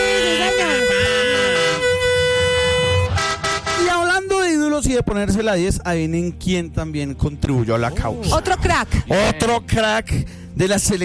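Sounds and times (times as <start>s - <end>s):
truck air horn honking on a street: 0.0s - 4.4s
speech: 5.0s - 11.0s.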